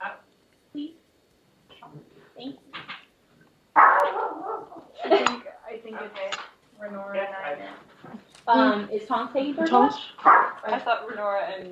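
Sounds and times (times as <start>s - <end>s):
puppy barking: 3.8s - 5.0s, 10.2s - 10.6s
speech: 8.5s - 11.7s.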